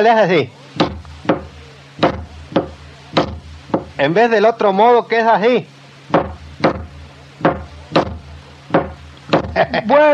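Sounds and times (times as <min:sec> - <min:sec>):
speech: 0:00.0 - 0:00.6, 0:04.0 - 0:05.8, 0:09.6 - 0:10.1
low hum: 0:00.0 - 0:10.1
hammer driving a nail into wood: 0:00.8 - 0:03.9, 0:06.1 - 0:09.6
laughter: 0:09.4 - 0:10.1.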